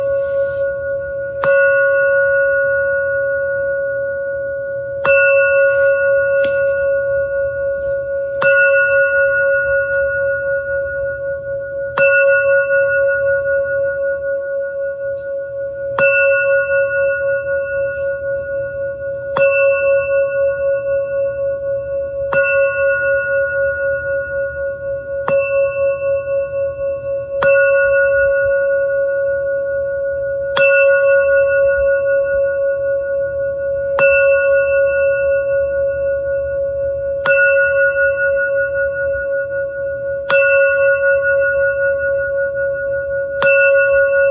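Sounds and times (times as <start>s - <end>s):
Tibetan singing bowl struck and ringing: 0.0s - 44.2s
continuous low steady hum: 0.0s - 44.2s.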